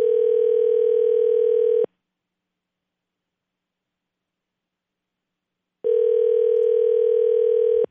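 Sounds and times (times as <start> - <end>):
long steady telephone ringback tones of an outgoing call: 0.0 - 1.9, 5.8 - 7.8.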